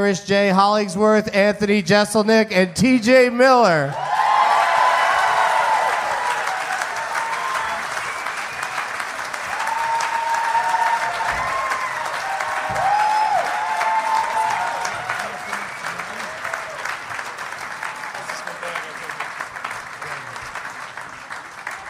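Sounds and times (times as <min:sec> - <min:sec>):
speech: 0:00.0 - 0:04.1
live audience applause in Bellevue Washington: 0:03.9 - 0:21.8
audience whistles and cheers: 0:04.0 - 0:18.6.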